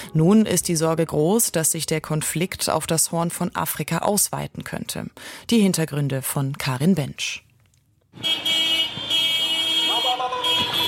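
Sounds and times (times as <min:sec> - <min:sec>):
speech: 0:00.1 - 0:07.4, 0:08.2 - 0:08.5
city street noise: 0:08.1 - 0:10.8
pickup truck horns blaring in a city street: 0:08.2 - 0:10.8.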